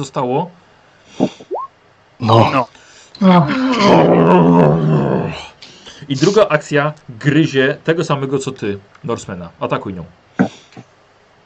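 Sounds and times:
speech: 0.0 - 0.6, 2.2 - 5.5, 6.1 - 10.9
she-bear growling in a video game: 2.2 - 5.5.

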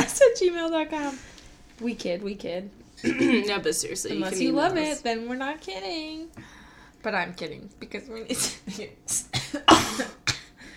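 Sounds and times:
speech: 0.4 - 10.2
person with a cold coughing with phlegm in the throat: 3.0 - 3.6, 9.3 - 10.6.

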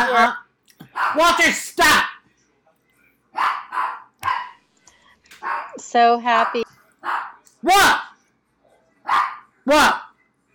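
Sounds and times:
speech: 0.1 - 0.4, 1.0 - 2.2, 5.4 - 8.1, 9.1 - 10.1
dog barking at the front door: 0.8 - 1.4, 3.3 - 4.6, 5.4 - 8.2, 9.0 - 9.5.

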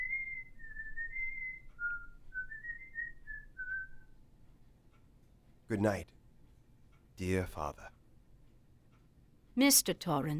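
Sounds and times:
man whistling a slow wandering tune: 0.0 - 4.2
speech: 5.7 - 6.2, 7.2 - 8.0, 9.6 - 10.3.

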